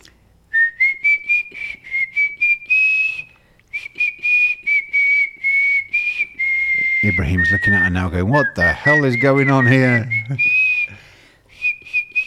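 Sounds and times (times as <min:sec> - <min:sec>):
person whistling a pop melody: 0:00.5 - 0:12.2
speech: 0:07.2 - 0:10.6.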